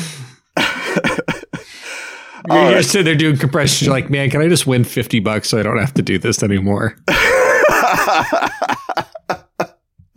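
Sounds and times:
harsh rasping coughs: 0.5 - 1.7
speech: 2.5 - 8.8
laughter: 7.1 - 9.8.

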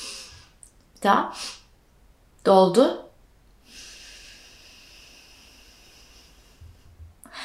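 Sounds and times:
person's long exhale through nose during breathing technique: 0.0 - 0.6, 3.6 - 7.4
speech: 1.0 - 1.5, 2.4 - 3.0.

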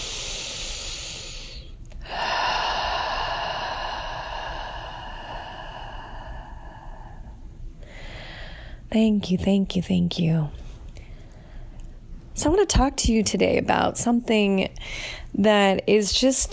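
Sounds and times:
long deep breath taken during a guided meditation: 0.0 - 8.9, 14.8 - 15.3
speech: 8.9 - 10.6, 12.4 - 16.5.

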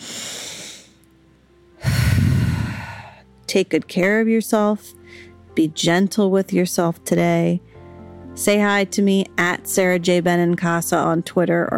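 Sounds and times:
deep breath: 0.0 - 1.0, 1.8 - 3.3
speech: 3.5 - 7.7, 8.4 - 11.7.

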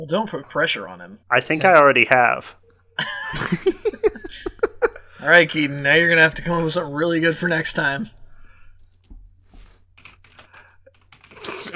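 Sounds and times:
speech: 0.0 - 4.5, 5.2 - 8.2
laughter: 3.0 - 5.8
rapid typing on a computer keyboard: 10.0 - 11.7.

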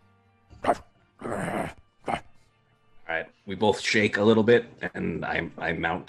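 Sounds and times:
speech: 0.6 - 0.9, 3.5 - 6.0
voice imitating a dog bark: 0.6 - 2.2.

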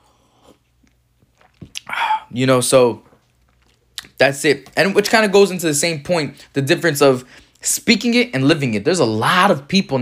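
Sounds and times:
person sipping coffee: 0.0 - 2.4, 3.0 - 4.2
speech: 2.3 - 3.1, 4.2 - 10.0.

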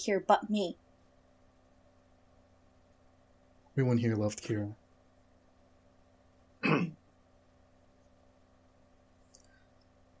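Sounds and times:
speech: 0.0 - 0.8, 3.8 - 4.8
throat clearing: 6.6 - 7.0.

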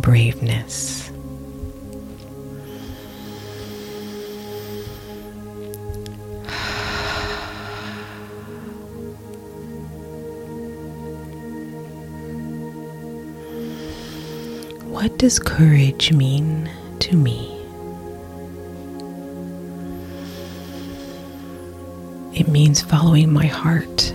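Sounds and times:
speech: 0.0 - 1.2, 15.1 - 17.5, 22.4 - 24.1
sustained low tonal drone: 0.0 - 24.1
deep slow breaths drawn in: 2.6 - 5.6, 6.4 - 9.2, 13.4 - 14.8, 19.9 - 22.0.

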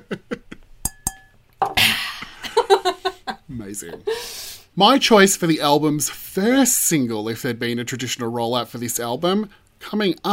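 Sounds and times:
glasses clinking together in a toast: 0.8 - 1.8
speech: 3.6 - 10.3.

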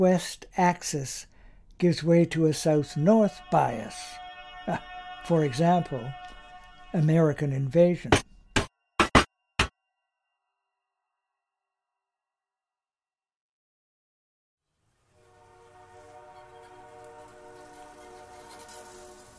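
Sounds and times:
speech: 0.0 - 8.2
train whistle at a level crossing: 2.6 - 7.8, 15.2 - 19.3.

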